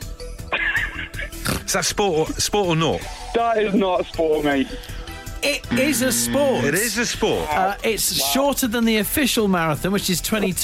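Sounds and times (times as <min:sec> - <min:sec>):
speech: 0:01.7 - 0:10.6
horse neighing: 0:05.7 - 0:07.0.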